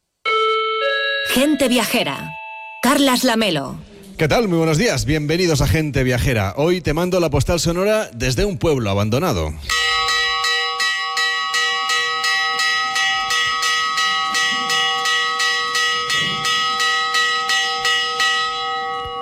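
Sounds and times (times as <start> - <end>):
bell ringing signaling gate closing: 0.2 - 3.8, 9.7 - 19.2
speech: 1.4 - 10.0.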